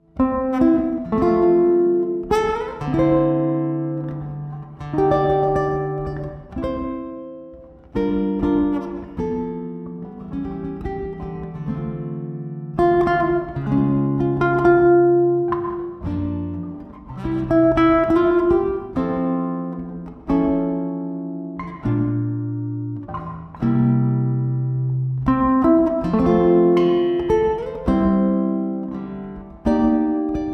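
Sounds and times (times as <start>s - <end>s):
jazz classical guitar playing: 0.0s - 30.5s.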